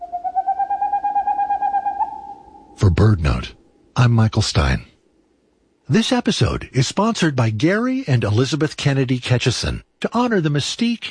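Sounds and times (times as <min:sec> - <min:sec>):
boreal owl song: 0:00.0 - 0:02.8
speech: 0:02.9 - 0:04.9, 0:05.9 - 0:11.0.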